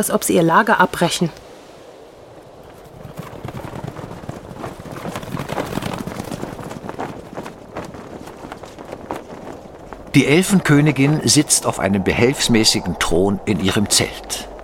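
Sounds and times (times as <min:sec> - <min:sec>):
speech: 0:00.0 - 0:01.5, 0:10.2 - 0:14.5
several horses' hooves clip-clopping: 0:02.6 - 0:12.3.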